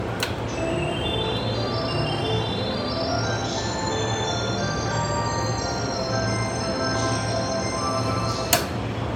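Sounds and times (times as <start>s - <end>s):
JR Keihin-Tohoku Line train south of Sakuragicho: 0.0s - 9.1s.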